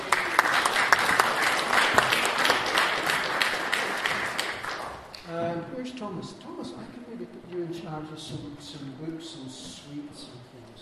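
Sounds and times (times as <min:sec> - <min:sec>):
audience applause at a Sunday school gathering: 0:00.0 - 0:05.3
speech: 0:07.3 - 0:10.8.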